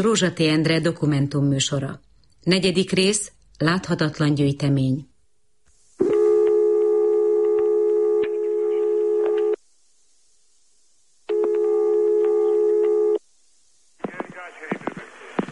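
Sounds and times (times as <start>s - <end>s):
speech: 0.0s - 5.1s
telephone line tones while dialing a number: 6.0s - 9.6s, 11.3s - 13.2s.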